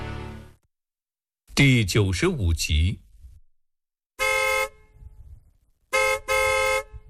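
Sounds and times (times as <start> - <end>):
speech: 1.6 - 3.0
car horn honking outside a gate: 4.2 - 5.1, 5.9 - 7.0.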